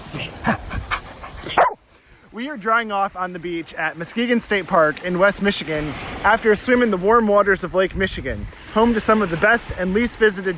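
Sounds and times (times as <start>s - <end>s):
dog barking and yipping: 1.4s - 1.8s
speech: 2.4s - 10.5s.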